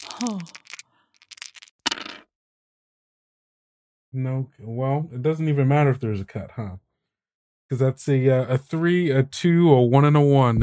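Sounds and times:
dice rolled across a hard tabletop for a tabletop game: 0:00.0 - 0:02.2
speech: 0:00.2 - 0:00.6, 0:04.1 - 0:06.8, 0:07.7 - 0:10.6.

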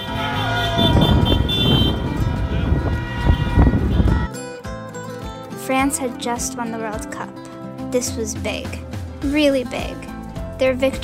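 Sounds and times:
horns of passing cars and motorcycles honking: 0:00.0 - 0:04.3
rumbling street traffic: 0:00.0 - 0:04.3
speech: 0:05.8 - 0:11.0.

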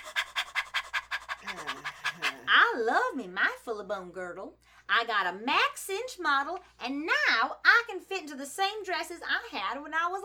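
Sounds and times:
person breathing in quick shallow breaths: 0:00.0 - 0:02.5
speech: 0:01.5 - 0:10.2.

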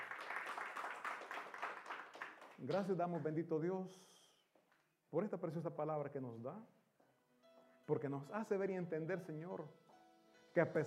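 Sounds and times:
crowd applauding in a reverberant room: 0:00.0 - 0:03.4
speech: 0:02.6 - 0:04.1, 0:05.1 - 0:06.8, 0:07.9 - 0:09.8, 0:10.6 - 0:10.8.

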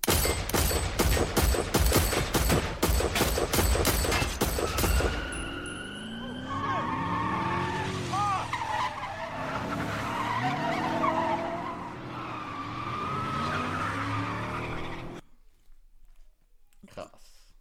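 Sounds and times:
gunshots fired at a car: 0:00.0 - 0:05.5
tires squealing: 0:04.5 - 0:15.2
car pulling away: 0:05.0 - 0:15.2.

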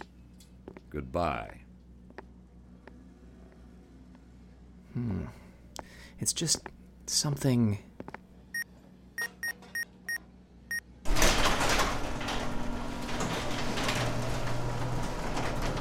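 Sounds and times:
speech: 0:00.9 - 0:01.6, 0:05.0 - 0:05.4, 0:06.2 - 0:08.2
short electronic beeps: 0:08.6 - 0:10.2
powered sliding warehouse door opening with a hissing whoosh: 0:11.1 - 0:15.8.

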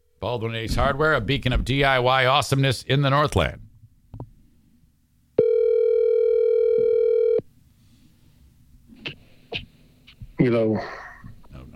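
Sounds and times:
speech: 0:00.2 - 0:03.7, 0:10.4 - 0:11.0
telephone dial tone from an accidental butt dial: 0:05.4 - 0:07.4.

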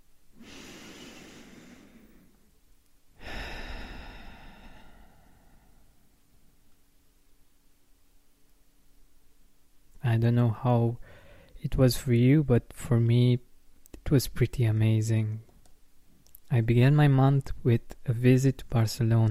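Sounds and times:
deep breath in: 0:00.4 - 0:02.5, 0:03.2 - 0:06.2, 0:11.0 - 0:11.6
speech: 0:10.1 - 0:11.0, 0:11.6 - 0:13.5, 0:14.1 - 0:15.5, 0:16.5 - 0:19.3.

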